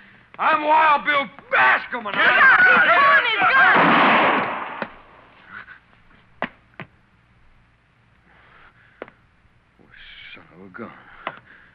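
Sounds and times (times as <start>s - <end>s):
speech: 0.4s - 4.3s, 10.6s - 11.1s
gunshots in a Western-style scene: 3.4s - 5.2s.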